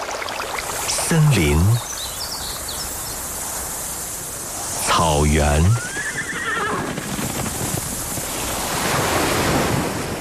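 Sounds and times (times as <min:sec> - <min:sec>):
ocean waves washing in: 0:00.0 - 0:10.1
speech: 0:01.1 - 0:01.9, 0:05.1 - 0:05.9
wind noise: 0:06.7 - 0:10.1.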